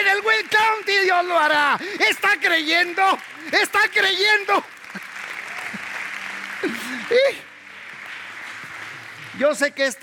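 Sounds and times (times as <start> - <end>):
audience applauding: 0.0 - 10.0
speech: 0.2 - 4.8, 6.6 - 7.5, 9.4 - 10.0
laughter: 4.8 - 7.5.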